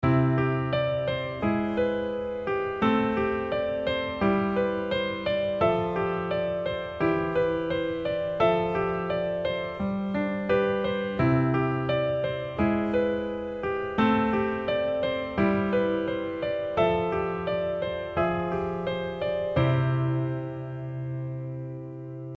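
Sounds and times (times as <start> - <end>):
instrumental arrangement with right-hand voicing: 0.0 - 22.3.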